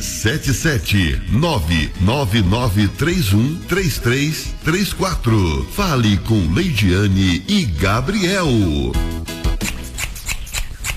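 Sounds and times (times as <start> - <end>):
speech: 0.2 - 9.4
hair salon scissors snipping: 9.6 - 10.9.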